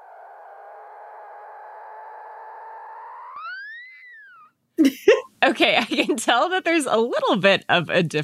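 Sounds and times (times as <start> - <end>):
mother dolphin with her calf whistling: 0.0 - 4.6
speech: 4.8 - 8.2.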